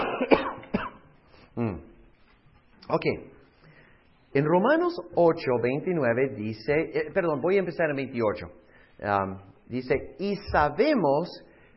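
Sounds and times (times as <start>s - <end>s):
person coughing: 0.0s - 1.8s
voiced throat clearing: 0.0s - 1.9s
speech: 0.2s - 0.6s, 1.6s - 1.9s, 2.9s - 3.4s, 4.4s - 11.5s.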